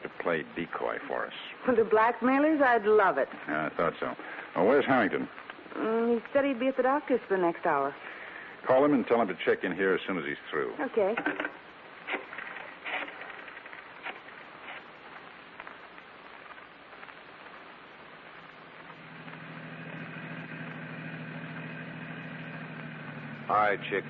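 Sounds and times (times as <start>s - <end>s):
hiss like rain falling on the vehicle: 0.0s - 24.0s
speech: 0.3s - 11.6s, 23.6s - 24.0s
car engine idling: 18.8s - 24.0s.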